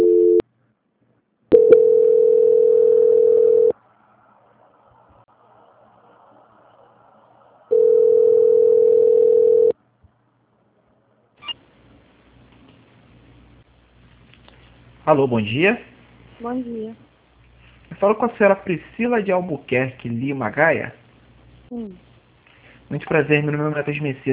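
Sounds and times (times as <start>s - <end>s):
telephone tone during a call transfer: 0.0s - 0.4s, 1.5s - 3.8s, 7.7s - 9.8s
speech: 15.1s - 17.1s, 18.0s - 21.0s, 21.7s - 22.1s, 22.9s - 24.3s.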